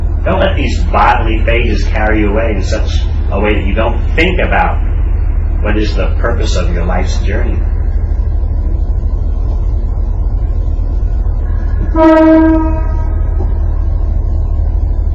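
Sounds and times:
train rumbling: 0.0 - 15.1
speech: 0.2 - 4.9, 5.6 - 7.7, 11.9 - 12.9
train horn blast: 11.4 - 13.7.

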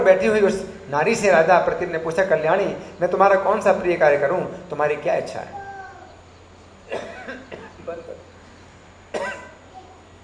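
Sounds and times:
speech: 0.0 - 5.6
faint steady hum: 0.0 - 10.2
person coughing: 6.9 - 7.8, 9.1 - 9.6.

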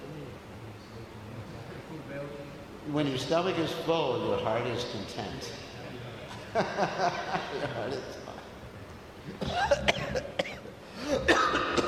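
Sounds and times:
speech: 2.9 - 5.7, 6.5 - 8.2, 9.3 - 10.0
laughter: 6.3 - 8.6
person coughing in a fit after laughing: 9.4 - 11.8.

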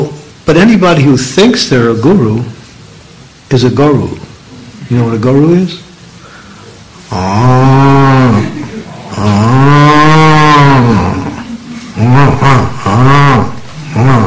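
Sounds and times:
speech: 0.5 - 2.6, 3.5 - 4.3, 4.9 - 5.8, 7.1 - 7.6
person with a slightly sore throat imitating cow mooing: 7.1 - 14.2.

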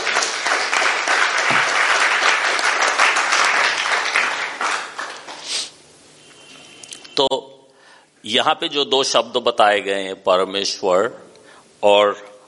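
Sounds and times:
crowd applauding: 0.0 - 5.4
speech: 8.3 - 11.2, 11.8 - 12.3.

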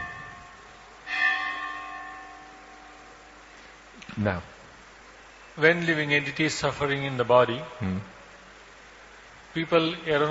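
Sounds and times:
bell ringing with bright metallic strike: 0.0 - 3.0
speech: 4.2 - 4.5, 5.6 - 8.1, 9.5 - 10.2.

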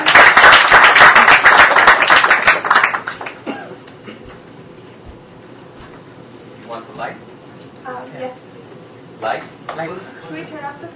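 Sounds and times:
room full of people clapping enthusiastically: 0.0 - 3.4.

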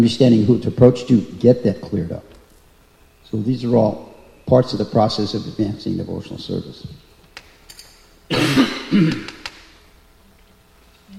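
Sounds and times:
speech: 0.0 - 2.3, 3.3 - 7.0, 8.3 - 9.3
harsh raspy coughs: 8.3 - 9.4.

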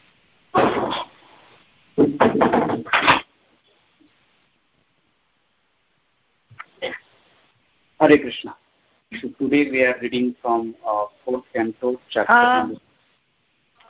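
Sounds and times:
rattling knocks and clatter: 2.0 - 3.0
door thudding shut: 2.0 - 3.2
speech: 8.1 - 12.9.

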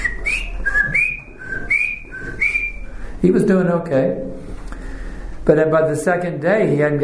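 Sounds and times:
person whistling an imitation of a bird chirping: 0.0 - 2.9
speech: 3.2 - 4.3, 5.5 - 7.0.

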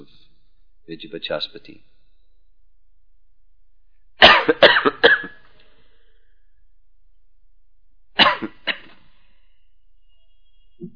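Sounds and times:
speech: 0.9 - 1.9
person clearing throat: 4.2 - 5.4, 8.2 - 9.0
person coughing harshly: 4.2 - 5.4, 8.2 - 9.0.

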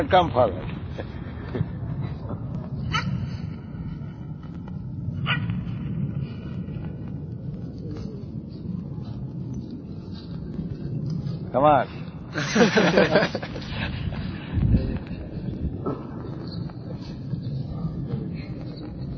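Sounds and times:
speech: 0.0 - 1.7, 11.6 - 13.6
rumbling outdoor background: 0.0 - 19.1
faint voices murmuring: 0.4 - 12.4, 13.5 - 19.1
dog barking: 2.9 - 3.3
laughter: 12.3 - 14.3.

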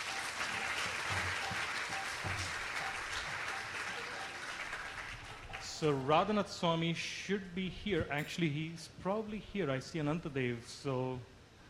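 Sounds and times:
large audience applauding: 0.0 - 6.2
speech: 5.8 - 11.3.

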